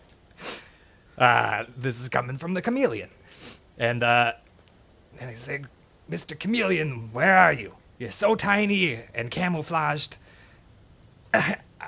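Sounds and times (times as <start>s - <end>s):
speech: 1.2s - 4.4s, 5.2s - 10.4s, 11.3s - 11.8s
person coughing: 11.3s - 11.8s.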